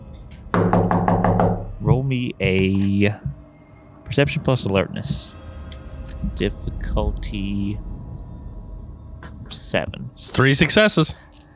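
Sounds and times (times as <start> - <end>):
knocking on a wooden door: 0.6 - 1.8
speech: 1.9 - 3.4, 4.1 - 5.4, 6.2 - 7.9, 9.7 - 11.4.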